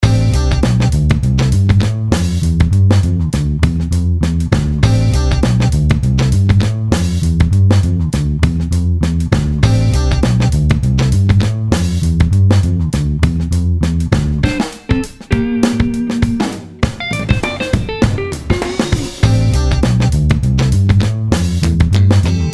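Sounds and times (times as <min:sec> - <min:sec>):
jazz beats: 0:00.0 - 0:22.5.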